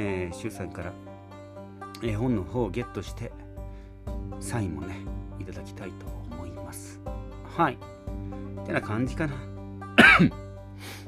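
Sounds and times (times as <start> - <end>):
speech: 0.0 - 1.1, 2.0 - 3.4, 4.0 - 9.5, 10.1 - 10.9
person giving a short husky cough: 10.0 - 10.4.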